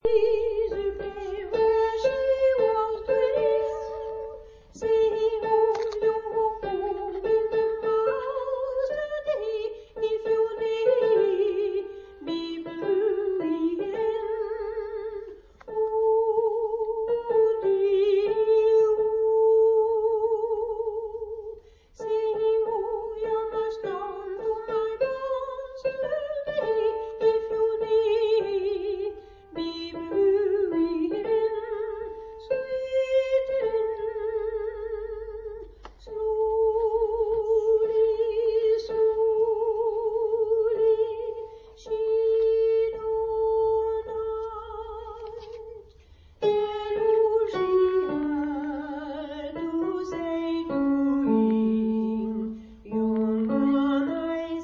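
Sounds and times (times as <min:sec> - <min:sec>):
soprano singing Scottish folk song: 0:00.0 - 0:54.6.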